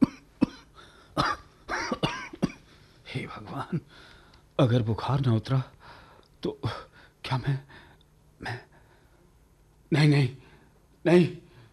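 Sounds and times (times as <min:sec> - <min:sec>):
man with a cold and fever coughing: 0:00.0 - 0:02.7
speech: 0:03.6 - 0:05.8, 0:06.4 - 0:07.8, 0:08.4 - 0:08.7, 0:09.9 - 0:10.4, 0:11.0 - 0:11.4.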